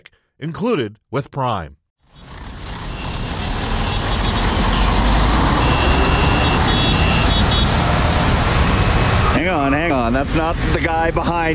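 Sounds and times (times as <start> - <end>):
speech: 0.4 - 1.8, 10.1 - 11.5
truck's high reversing beeper: 2.1 - 9.4
dense city traffic rumble with engines idling: 2.1 - 11.5.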